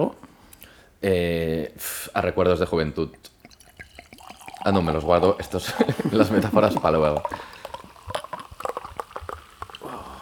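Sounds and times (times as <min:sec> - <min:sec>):
speech: 0:00.0 - 0:00.2, 0:01.0 - 0:03.4, 0:04.6 - 0:07.6
sparkling lambrusco wine being poured: 0:02.5 - 0:10.2
sparkling lambrusco wine fizzing with tiny bubbles popping: 0:03.0 - 0:10.2
laughter: 0:05.6 - 0:06.8.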